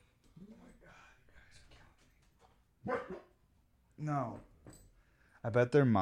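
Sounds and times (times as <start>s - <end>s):
dogs barking, one brindle: 2.8s - 3.4s
speech: 4.0s - 4.5s, 5.4s - 5.9s.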